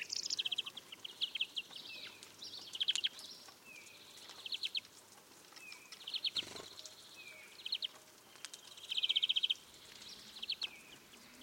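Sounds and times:
European greenfinch Chloris chloris soft twittering song: 0:00.0 - 0:04.9, 0:05.6 - 0:11.4.

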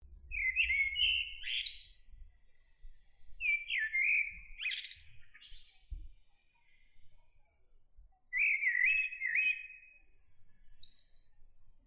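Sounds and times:
faint low rumble: 0:00.0 - 0:01.0
common blackbird song: 0:00.0 - 0:11.8.

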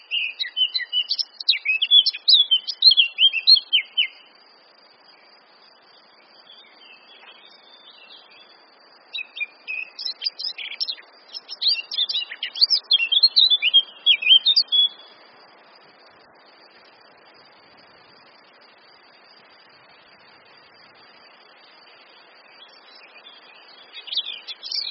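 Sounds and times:
Eurasian blackcap (Sylvia atricapilla) song with rapid varied warbling: 0:00.0 - 0:04.3, 0:06.4 - 0:15.2, 0:22.4 - 0:24.9.

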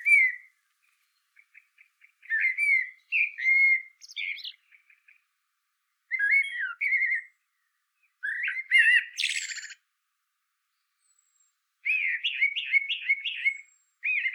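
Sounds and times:
common blackbird Turdus merula singing melodious fluted whistles: 0:00.0 - 0:05.3, 0:06.1 - 0:09.8, 0:10.7 - 0:14.3.

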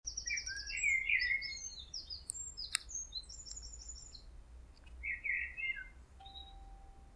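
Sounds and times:
common blackbird warbling: 0:00.1 - 0:04.3, 0:05.0 - 0:07.0
sharp click: 0:02.3 - 0:03.6.

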